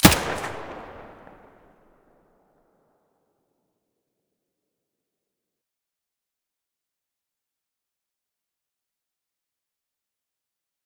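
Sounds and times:
MP5 submachine gun muzzle blasts: 0.0s - 1.5s.

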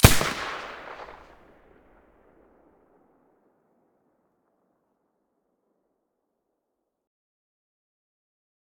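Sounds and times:
silenced submachine gun shots: 0.0s - 1.4s.

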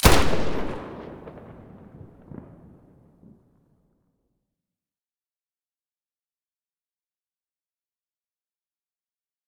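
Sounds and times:
FN2000 rifle muzzle blast: 0.0s - 1.7s.

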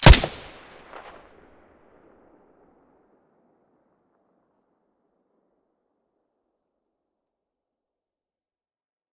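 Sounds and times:
gun firing with silencer: 0.0s - 1.2s.

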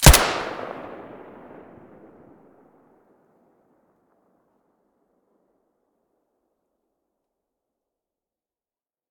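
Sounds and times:
weapon fired with silencer: 0.0s - 2.3s.

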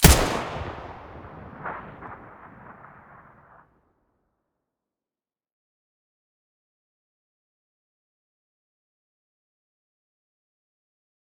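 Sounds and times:
HK416 rifle gunshot at the muzzle: 0.0s - 3.3s.

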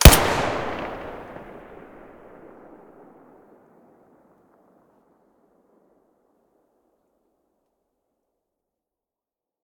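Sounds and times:
TT-33 pistol gunshot: 0.0s - 2.4s.

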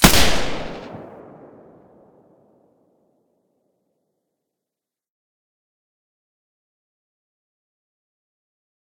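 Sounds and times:
G36 rifle shot with silencer: 0.0s - 2.1s.

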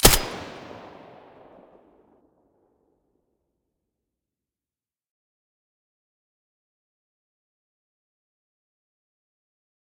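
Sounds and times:
M4A1 rifle with silencer firing: 0.0s - 1.7s.

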